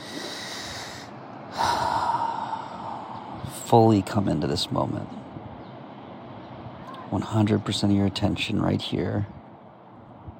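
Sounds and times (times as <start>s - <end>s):
deep breath during a guided relaxation exercise: 0.0s - 3.5s
speech: 3.7s - 5.2s, 7.1s - 9.4s.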